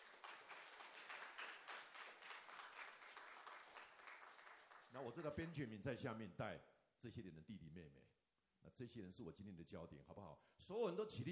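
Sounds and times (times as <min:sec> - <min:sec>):
room full of people applauding: 0:00.0 - 0:05.4
speech: 0:04.9 - 0:11.3.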